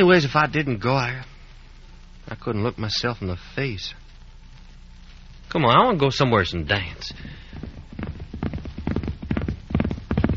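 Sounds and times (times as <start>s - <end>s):
speech: 0.0s - 1.3s, 2.3s - 4.0s, 5.5s - 7.7s
horse hooves clip-clopping: 7.0s - 10.3s.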